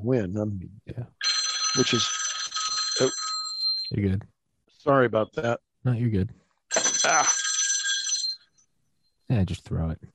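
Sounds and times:
speech: 0:00.0 - 0:02.2, 0:03.0 - 0:03.2, 0:03.9 - 0:06.4, 0:09.3 - 0:10.1
cell phone ringtone ringing: 0:01.2 - 0:04.0, 0:06.7 - 0:08.7.

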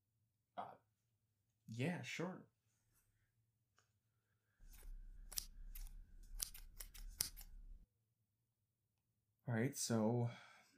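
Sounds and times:
speech: 0:01.7 - 0:02.5, 0:09.5 - 0:10.4
scissors snipping: 0:04.6 - 0:07.8.

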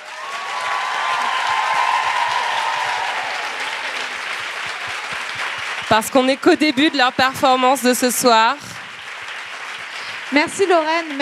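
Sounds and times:
faint cheers and whistles from an audience: 0:00.0 - 0:06.1
large audience applauding loudly at an evening event: 0:00.0 - 0:11.1
speech: 0:05.9 - 0:08.7, 0:10.3 - 0:11.1.

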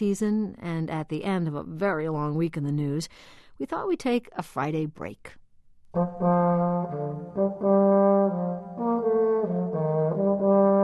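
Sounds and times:
speech: 0:00.0 - 0:10.8
old wooden leather-covered serpent playing low buzzy notes: 0:06.0 - 0:10.8.

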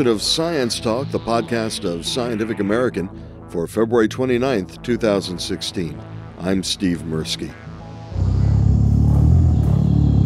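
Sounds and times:
speech: 0:00.0 - 0:07.6
male gorilla humming while eating: 0:08.1 - 0:10.2.

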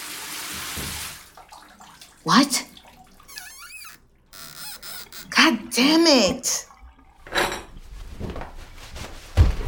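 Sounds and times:
shower water running: 0:00.0 - 0:09.5
faint water drips: 0:01.2 - 0:07.3
speech: 0:02.2 - 0:02.7, 0:05.8 - 0:06.7.

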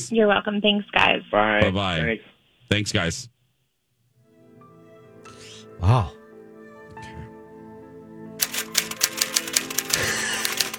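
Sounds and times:
speech: 0:00.0 - 0:03.4, 0:05.8 - 0:06.2
person typing rapidly with sharp key clacks: 0:08.4 - 0:10.7.

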